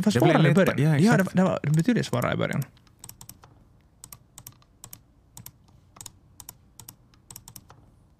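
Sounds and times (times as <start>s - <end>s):
speech: 0.0s - 2.9s
low room hum: 0.0s - 8.1s
computer mouse clicking: 1.7s - 7.9s.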